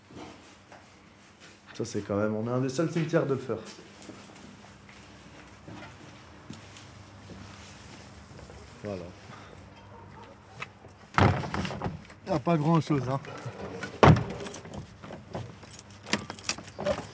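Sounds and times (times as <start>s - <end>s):
speech: 1.8s - 3.9s, 12.5s - 13.5s
rattling metallic jangling of the gate: 3.9s - 4.4s, 9.9s - 11.1s, 12.2s - 17.1s
heavy metal cemetery gate clanging shut: 12.4s - 17.1s.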